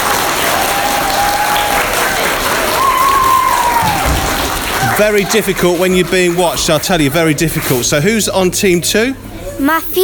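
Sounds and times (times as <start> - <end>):
crowd applauding: 0.0 - 8.0
speech: 5.0 - 10.0.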